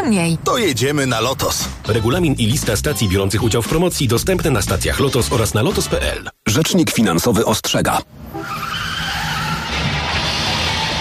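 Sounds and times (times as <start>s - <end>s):
speech: 0.0s - 8.7s
car tires skidding in a road accident: 8.2s - 11.0s.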